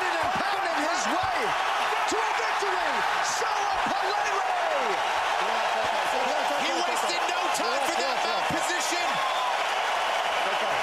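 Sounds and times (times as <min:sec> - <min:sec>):
large arena crowd at a UFC fight roaring and cheering: 0:00.0 - 0:10.8.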